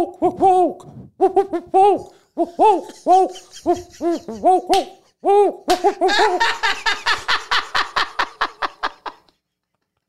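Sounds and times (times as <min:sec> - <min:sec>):
person imitating owl hooting calls: 0:00.0 - 0:06.1
speech: 0:00.0 - 0:07.1
laughter: 0:02.4 - 0:04.8, 0:05.7 - 0:09.4.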